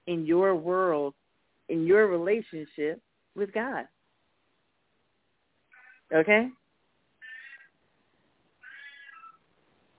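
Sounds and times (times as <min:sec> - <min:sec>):
faint noise: 0:00.0 - 0:09.9
speech: 0:00.1 - 0:04.0, 0:06.1 - 0:06.6
cat meowing: 0:08.6 - 0:09.4.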